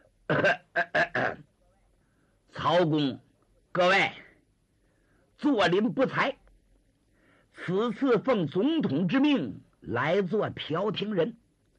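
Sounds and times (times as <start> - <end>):
speech: 0.3 - 1.0, 2.7 - 3.2, 3.8 - 4.2, 5.4 - 6.4, 7.6 - 11.4
person imitating coughing: 0.3 - 1.5.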